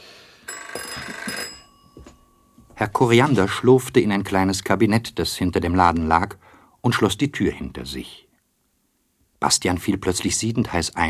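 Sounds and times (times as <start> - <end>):
telephone bell ringing: 0.5 - 3.6
speech: 2.8 - 8.2, 9.4 - 11.0.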